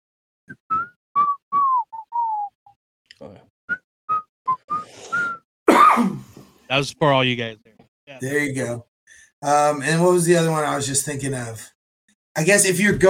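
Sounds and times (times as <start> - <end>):
person whistling a short jaunty melody: 0.5 - 2.8, 3.7 - 5.5
speech: 6.7 - 11.7, 12.4 - 13.0.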